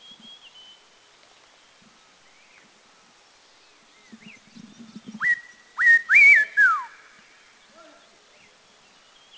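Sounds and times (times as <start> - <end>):
spotted laughingthrush giving clear whistled notes in Dirang India: 5.2 - 7.0.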